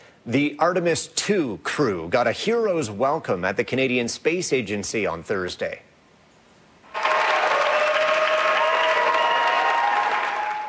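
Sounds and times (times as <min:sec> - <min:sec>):
speech: 0:00.2 - 0:05.9
large crowd applauding: 0:06.9 - 0:10.6.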